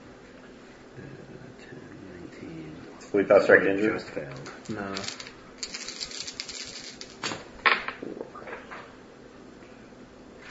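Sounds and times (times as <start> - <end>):
speech: 3.1 - 5.3
dice rolling during a tabletop role-playing game: 4.6 - 8.0.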